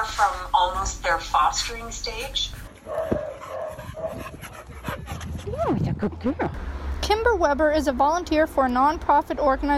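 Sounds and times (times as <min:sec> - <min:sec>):
speech: 0:00.2 - 0:03.2, 0:05.6 - 0:09.7
female service dog in training barking in Nova Scotia: 0:02.8 - 0:04.3.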